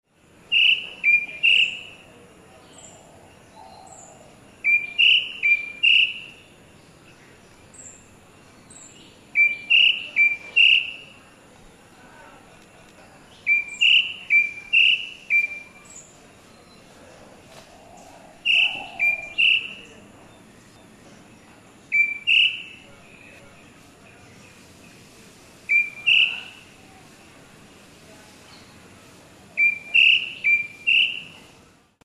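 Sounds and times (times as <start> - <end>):
White-bellied drongo calling: 0.3 - 27.8, 28.4 - 31.6.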